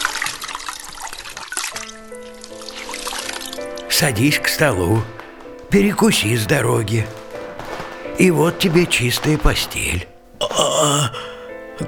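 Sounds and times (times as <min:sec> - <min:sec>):
water pouring and trickling into a vessel for washing: 0:00.0 - 0:04.0
speech: 0:04.0 - 0:07.2, 0:08.2 - 0:10.1, 0:10.8 - 0:11.2.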